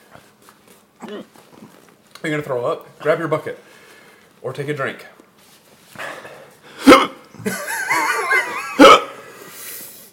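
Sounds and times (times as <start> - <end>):
faint noise: 0.0 - 10.1
sharp abrupt hiccups: 1.0 - 1.7, 6.8 - 7.2
speech: 1.0 - 3.8, 4.4 - 5.2
laughter: 7.4 - 9.2.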